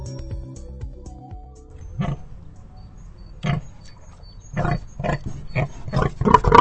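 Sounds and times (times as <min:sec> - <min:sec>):
pig grunting and snorting in a wooden crate on a trailer: 0:01.9 - 0:02.4, 0:03.4 - 0:06.5.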